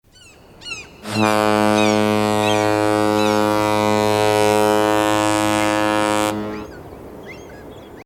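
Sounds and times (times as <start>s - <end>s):
cruise ship horn ringtone: 1.0s - 6.8s.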